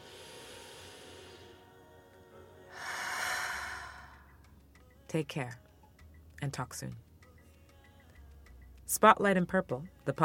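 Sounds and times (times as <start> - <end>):
deep human breath: 0.0 - 1.7, 2.7 - 4.4
speech: 5.1 - 5.6, 6.4 - 7.1, 8.9 - 10.2.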